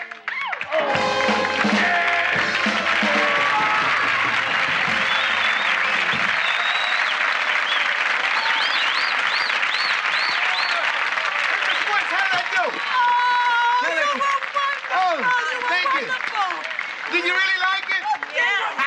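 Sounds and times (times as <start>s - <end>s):
large crowd clapping: 0.0s - 18.8s
people cheering: 0.0s - 18.8s
sharp whistles: 4.9s - 10.8s.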